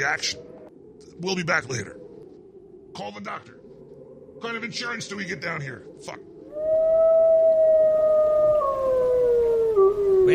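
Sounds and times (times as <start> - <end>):
speech: 0.0 - 0.5, 1.2 - 2.0, 2.9 - 3.6, 4.4 - 6.3
person howling: 6.5 - 10.3.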